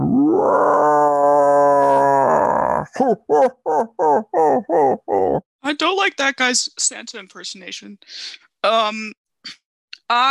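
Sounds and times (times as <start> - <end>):
quick rhythmic guttural snarls: 0.0 - 3.0
monstrous roar sound effect: 0.0 - 3.2
speech: 3.0 - 10.2.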